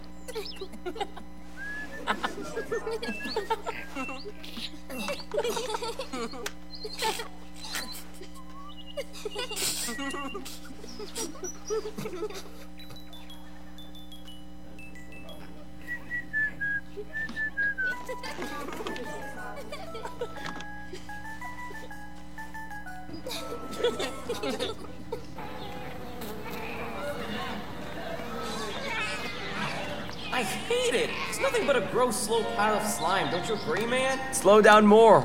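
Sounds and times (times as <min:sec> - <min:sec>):
exotic bird calls: 0:00.0 - 0:13.8, 0:23.1 - 0:34.8
laughter: 0:00.2 - 0:13.8, 0:15.2 - 0:34.8
speech: 0:00.4 - 0:01.4, 0:02.1 - 0:07.4, 0:09.3 - 0:12.8, 0:31.6 - 0:35.2.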